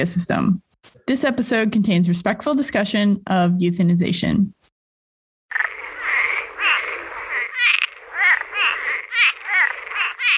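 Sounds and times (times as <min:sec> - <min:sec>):
speech: 0:00.0 - 0:04.6
Cuban tree frog giving raspy creaky calls: 0:05.5 - 0:10.3.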